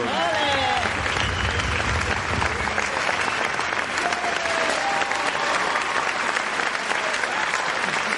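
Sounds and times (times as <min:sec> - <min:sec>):
sustained applause from a large audience: 0:00.0 - 0:08.1
whistles in the crowd: 0:01.0 - 0:03.6.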